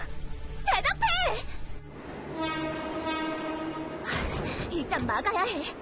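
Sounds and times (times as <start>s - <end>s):
train arriving on the opposite track: 0.7s - 5.8s
train horn blasts: 2.0s - 4.4s.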